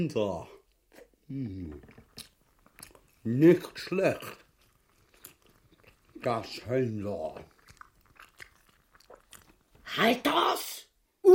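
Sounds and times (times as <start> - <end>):
speech: 0.0 - 0.5, 1.3 - 2.3, 3.2 - 4.4, 6.2 - 7.5, 9.9 - 11.3
crunching and smacking while chewing a roast bird: 0.9 - 9.9.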